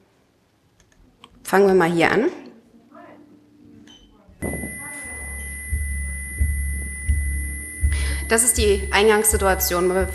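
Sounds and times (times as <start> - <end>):
speech: 1.5 - 2.4, 8.3 - 10.1
faint speech: 2.3 - 5.6
low hum: 4.4 - 10.1
steady high-pitched electronic calibration beep tone: 4.4 - 10.1.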